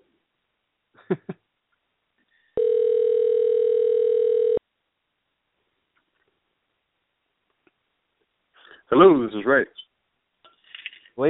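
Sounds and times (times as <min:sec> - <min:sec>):
speech: 0:01.1 - 0:01.3, 0:08.9 - 0:09.9
telephone dial tone while dialing out: 0:02.6 - 0:04.6.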